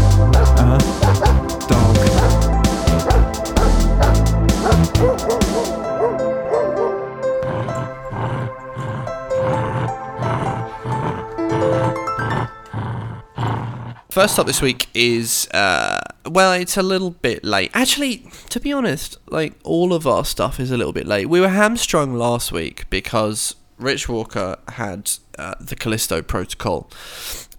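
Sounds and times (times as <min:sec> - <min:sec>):
dog growling: 0:00.2 - 0:14.6
dog barking: 0:00.4 - 0:07.0
speech: 0:14.2 - 0:27.4.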